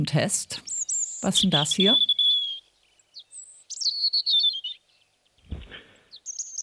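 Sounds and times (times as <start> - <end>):
speech: 0.0 - 2.2
European robin singing warbling trills: 0.6 - 5.4, 6.0 - 6.6
low rustling thump: 5.5 - 5.9.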